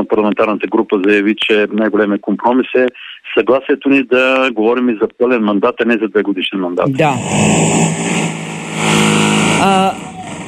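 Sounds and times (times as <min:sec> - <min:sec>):
speech: 0:00.1 - 0:10.4
loud steady mechanical drone from building renovation: 0:07.0 - 0:10.4.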